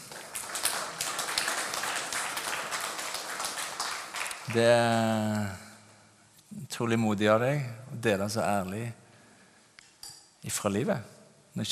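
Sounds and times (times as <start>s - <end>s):
audience applause: 0.0s - 5.2s
speech: 4.5s - 5.6s, 6.8s - 9.0s, 10.4s - 11.6s.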